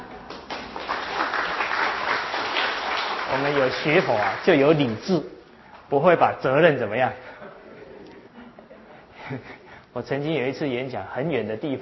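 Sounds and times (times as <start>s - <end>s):
audience applause: 0.3s - 5.0s
speech: 3.3s - 7.3s, 9.3s - 11.8s.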